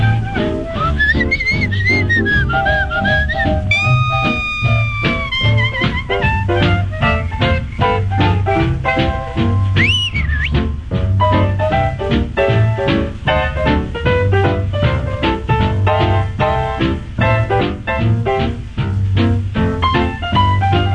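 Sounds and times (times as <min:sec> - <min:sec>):
person whistling a bright bouncy tune: 0:00.0 - 0:08.0, 0:09.8 - 0:10.7
full band with steady bass and drum beat: 0:00.0 - 0:20.9.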